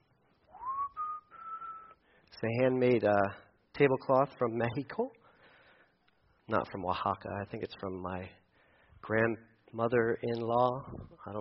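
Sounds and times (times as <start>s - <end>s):
person whistling at home: 0.5s - 2.0s
speech: 2.4s - 5.2s, 6.5s - 8.4s, 9.0s - 11.4s.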